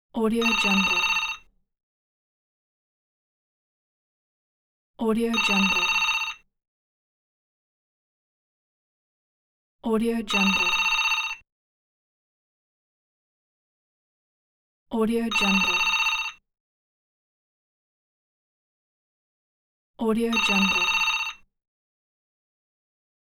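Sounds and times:
office phone ringing: 0:00.4 - 0:01.5, 0:05.3 - 0:06.5, 0:10.3 - 0:11.4, 0:15.3 - 0:16.4, 0:20.3 - 0:21.5.

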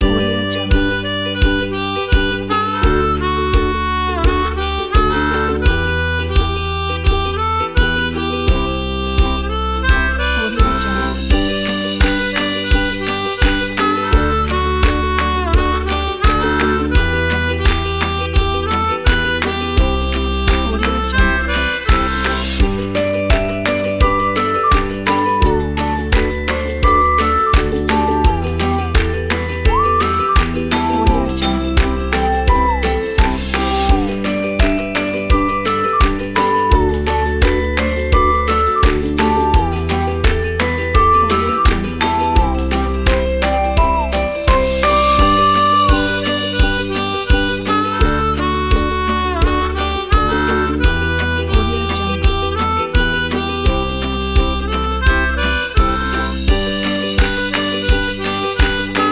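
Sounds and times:
happy ukulele: 0:00.0 - 0:59.1
harmonica: 0:00.0 - 0:59.1.

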